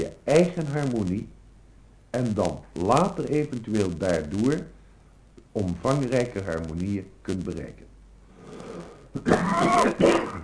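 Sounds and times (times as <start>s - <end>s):
speech: 0.3s - 1.4s, 2.1s - 4.8s, 5.5s - 7.9s, 9.2s - 10.4s
person coughing in a hacking coughing fit: 9.2s - 10.4s.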